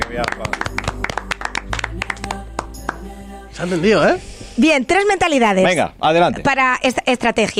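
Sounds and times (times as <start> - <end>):
hands clapping: 0.0 - 3.1
speech: 0.1 - 0.8, 3.6 - 7.5.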